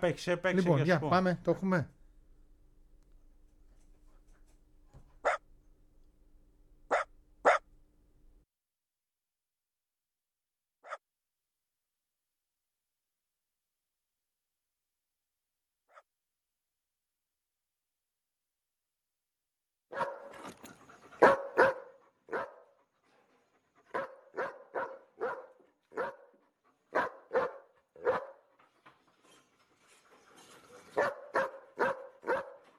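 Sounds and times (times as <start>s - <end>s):
speech: 0.0s - 2.0s
dogs barking: 5.2s - 5.4s, 6.9s - 7.7s, 19.9s - 22.8s, 23.9s - 28.5s, 30.9s - 32.7s.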